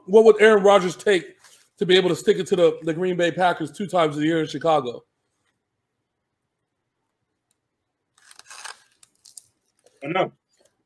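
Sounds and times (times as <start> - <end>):
speech: 0.1 - 5.1, 10.0 - 10.4
chewing a crunchy nacho chip: 8.2 - 9.9.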